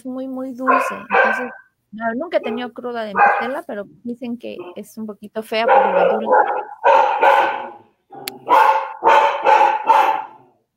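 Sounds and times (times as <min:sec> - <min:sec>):
speech: 0:00.0 - 0:07.0
dog barking: 0:00.6 - 0:01.8, 0:02.4 - 0:03.6, 0:05.6 - 0:10.6.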